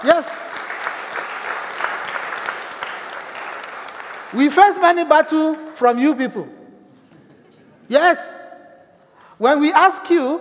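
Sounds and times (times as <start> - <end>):
speech: 0.0 - 0.4, 4.3 - 6.6, 7.9 - 8.4, 9.4 - 10.3
room full of people applauding: 0.0 - 5.1.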